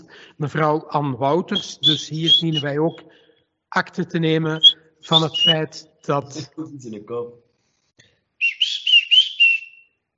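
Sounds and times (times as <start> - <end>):
speech: 0.4 - 7.4
bird warbling whistle in a meeting room: 1.6 - 3.1, 4.6 - 5.7, 8.4 - 10.0.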